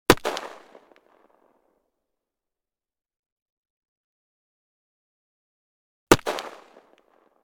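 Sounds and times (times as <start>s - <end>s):
gunshot: 0.1s - 1.4s, 6.1s - 7.4s.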